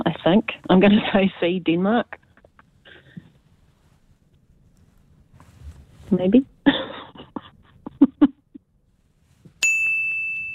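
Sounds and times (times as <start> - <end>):
speech: 0.2 - 2.2, 6.1 - 6.9
quiz answer bell ding: 9.6 - 10.5.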